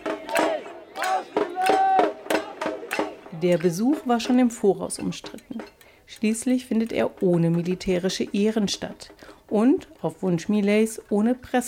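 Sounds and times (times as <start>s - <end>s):
protesters at a rally chanting in unison in front of the Federal Chancellery in Berlin: 0.0s - 3.8s
speech: 3.4s - 11.6s.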